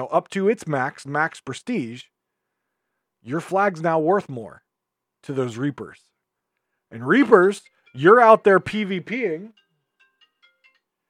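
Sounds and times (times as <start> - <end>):
speech: 0.0 - 2.1, 3.2 - 4.6, 5.2 - 6.1, 6.9 - 9.6
mobile phone ringtone: 7.6 - 11.0.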